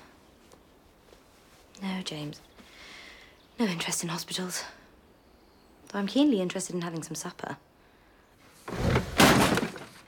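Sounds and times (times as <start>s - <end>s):
speech: 2.0s - 2.5s, 3.6s - 4.8s, 5.9s - 7.7s
play props crashing in a garden: 8.7s - 10.0s
play props splintering smash in a garden: 8.8s - 10.0s.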